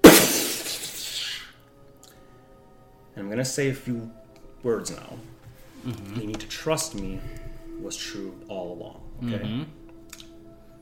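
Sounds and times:
magical spell breaking apart with a sharp glassy shatter: 0:00.0 - 0:01.0
speech: 0:03.2 - 0:09.8.

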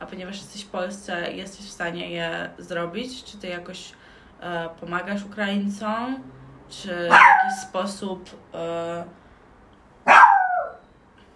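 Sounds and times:
speech: 0:00.1 - 0:09.2
dog barking: 0:07.1 - 0:07.7, 0:10.0 - 0:10.8.

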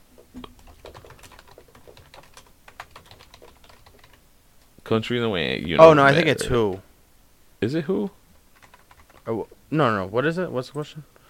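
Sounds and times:
typing on a computer keyboard: 0:00.4 - 0:04.2, 0:08.5 - 0:09.3
speech: 0:04.9 - 0:06.9, 0:07.6 - 0:08.2, 0:09.3 - 0:11.1.

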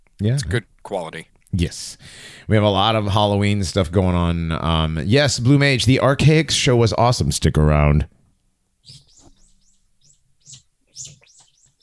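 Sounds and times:
speech: 0:00.2 - 0:08.2
bird chirping outside a window: 0:08.8 - 0:11.8.

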